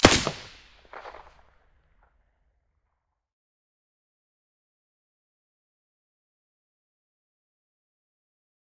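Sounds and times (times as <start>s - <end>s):
suppressed rifle shots: 0.0s - 1.3s.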